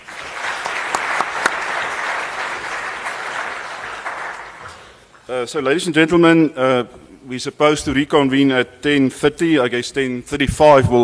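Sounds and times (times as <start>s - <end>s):
audience applause in a room full of people: 0.0s - 5.0s
speech: 5.3s - 11.0s.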